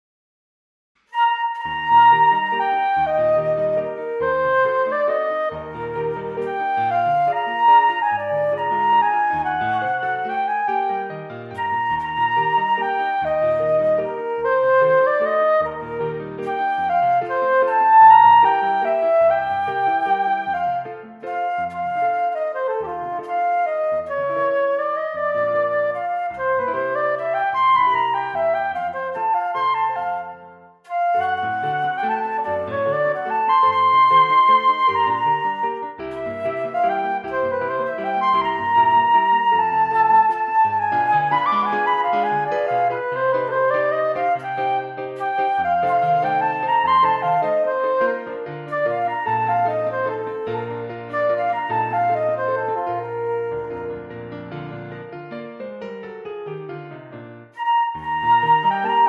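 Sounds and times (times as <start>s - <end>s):
piano: 1.0s - 59.0s
flute: 1.1s - 55.9s, 57.5s - 59.0s.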